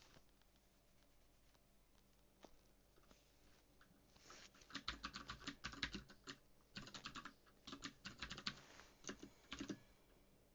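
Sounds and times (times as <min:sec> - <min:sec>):
typing on a mechanical keyboard with Cherry MX Blue keys: 0:04.7 - 0:09.8.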